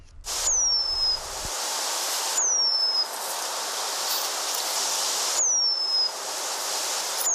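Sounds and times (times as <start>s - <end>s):
steady hiss: 0.0s - 7.3s
Eurasian penduline tit giving thin high descending whistles: 0.4s - 1.3s, 2.3s - 3.2s, 5.3s - 6.2s, 7.2s - 7.3s.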